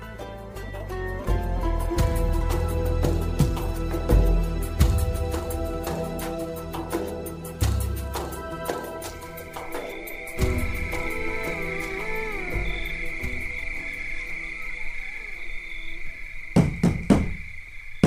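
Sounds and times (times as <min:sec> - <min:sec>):
crickets chirring: 0:00.0 - 0:18.0
knocking on a door: 0:16.6 - 0:17.4.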